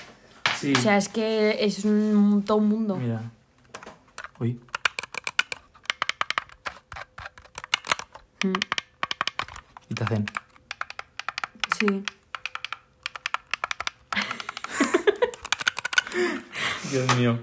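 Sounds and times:
speech: 0:00.6 - 0:03.4, 0:04.4 - 0:04.7, 0:08.4 - 0:08.8, 0:09.9 - 0:10.4, 0:11.8 - 0:12.2, 0:16.2 - 0:17.4
rapid clicky typing on a computer keyboard: 0:03.7 - 0:16.2
laughter: 0:14.2 - 0:15.4.

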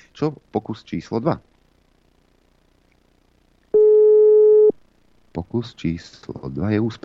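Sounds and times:
speech: 0:00.2 - 0:01.5, 0:05.4 - 0:07.0
electronic telephone ringback tone while a phone call is placed: 0:03.8 - 0:04.7.

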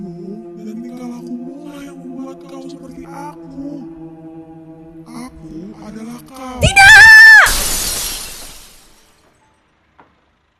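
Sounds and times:
glass shattering from a thrown object: 0:06.8 - 0:09.0
glass fragments tinkling: 0:07.5 - 0:09.0.

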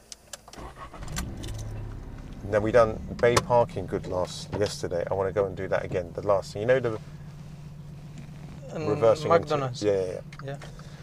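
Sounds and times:
sharp clicks of keys turning in the ignition: 0:00.1 - 0:06.3, 0:07.6 - 0:08.8
car engine cranking and catching: 0:00.4 - 0:11.0
speech: 0:02.4 - 0:07.2, 0:08.7 - 0:10.8.

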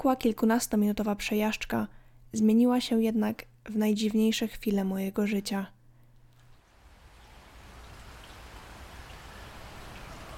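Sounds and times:
speech: 0:00.0 - 0:05.8
steady rain falling: 0:06.3 - 0:10.3.

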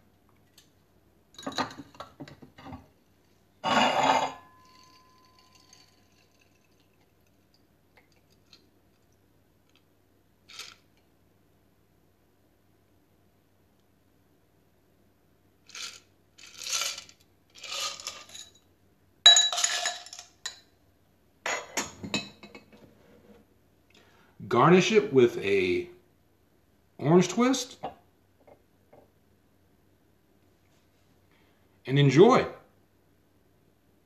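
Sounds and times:
ice and strainer clinking against a coupe glass: 0:03.6 - 0:07.0, 0:19.3 - 0:20.6
speech: 0:24.5 - 0:25.9, 0:27.2 - 0:27.8, 0:31.9 - 0:32.6.

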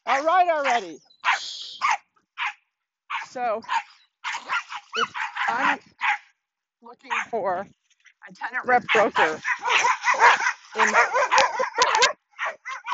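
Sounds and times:
speech: 0:00.2 - 0:01.6, 0:03.3 - 0:03.8, 0:05.0 - 0:06.0, 0:06.8 - 0:11.4
small dog barking and yipping: 0:00.6 - 0:06.3, 0:07.1 - 0:07.4, 0:08.6 - 0:12.9.

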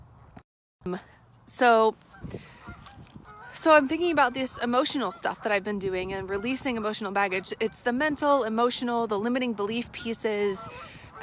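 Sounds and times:
speech: 0:00.8 - 0:02.5, 0:03.6 - 0:11.2
goose honking outdoors: 0:02.1 - 0:11.2.

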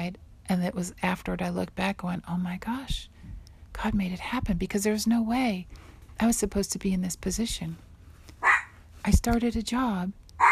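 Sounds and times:
speech: 0:00.0 - 0:03.2, 0:03.8 - 0:07.9, 0:09.0 - 0:10.2
low steady hum: 0:00.0 - 0:10.5
dog barking: 0:08.4 - 0:08.7.

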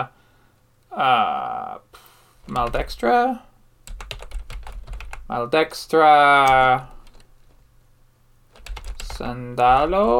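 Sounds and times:
speech: 0:01.0 - 0:03.5, 0:05.3 - 0:07.0, 0:09.2 - 0:10.1
typing on a computer keyboard: 0:03.9 - 0:05.2, 0:06.4 - 0:07.3, 0:08.5 - 0:10.1.

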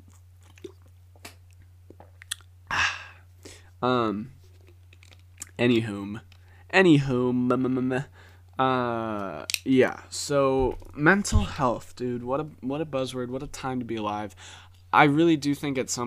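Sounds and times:
person sipping water with mouth clicks and gulps: 0:00.0 - 0:01.0
person sighing with satisfaction: 0:02.7 - 0:03.6
speech: 0:03.8 - 0:04.4, 0:05.6 - 0:16.0.

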